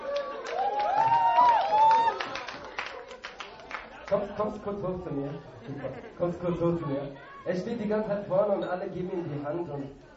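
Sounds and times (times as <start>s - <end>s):
crowd cheering and whistle-like voices: 0.0s - 2.5s
audience applause: 0.0s - 4.4s
speech: 4.1s - 10.1s.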